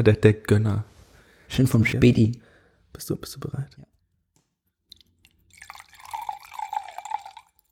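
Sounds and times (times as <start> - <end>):
speech: 0.0 - 0.9, 1.5 - 3.9
liquid pouring from a screw-cap bottle: 4.9 - 7.7.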